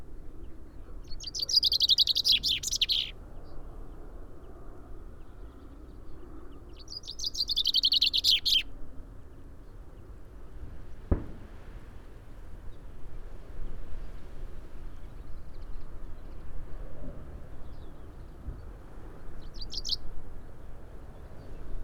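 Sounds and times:
common chaffinch Fringilla coelebs song descending trill of sharp notes: 1.1 - 3.1, 6.8 - 8.6, 19.5 - 20.0.

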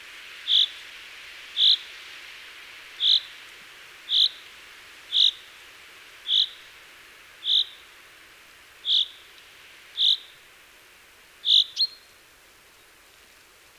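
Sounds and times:
faint background hiss: 0.0 - 13.7
common chaffinch Fringilla coelebs calling: 0.5 - 0.8, 1.6 - 1.9, 3.0 - 3.3, 4.1 - 4.5, 5.1 - 5.5, 6.2 - 6.6, 7.4 - 7.8, 8.8 - 9.3, 10.0 - 10.4, 11.4 - 12.1.

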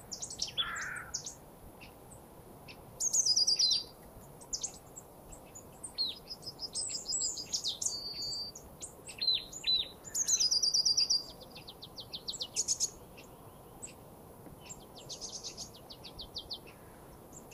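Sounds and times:
Poecile palustris marsh tit calling: 0.1 - 2.0, 2.7 - 14.0, 14.6 - 17.5.

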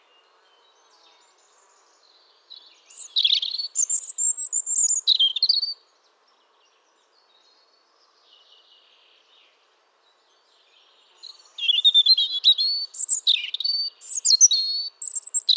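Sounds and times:
European robin Erithacus rubecula singing: 1.4 - 5.8, 11.2 - 15.5.

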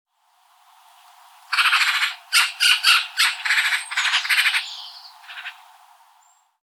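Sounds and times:
Eurasian magpie Pica pica rattling chatter call: 1.5 - 5.6.

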